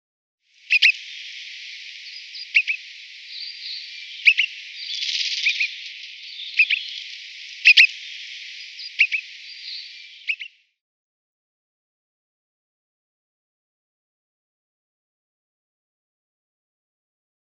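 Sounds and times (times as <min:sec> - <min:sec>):
Pine Grosbeak calling: 0:00.6 - 0:10.6.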